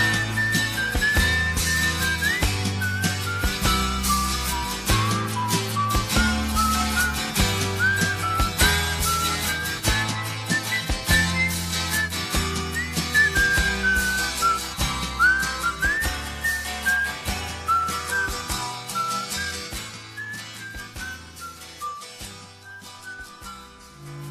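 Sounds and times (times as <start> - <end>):
full steady musical accompaniment with a thumping bass line: 0.0 - 15.2
person whistling a lilting melody: 0.0 - 23.8.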